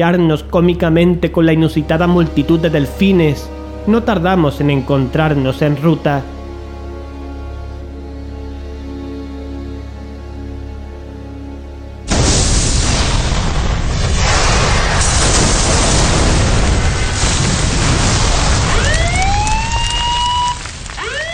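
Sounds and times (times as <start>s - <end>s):
speech: 0.0s - 6.4s
explosion in a ship's engine room: 12.1s - 21.3s
rising siren-like wails: 18.5s - 21.3s.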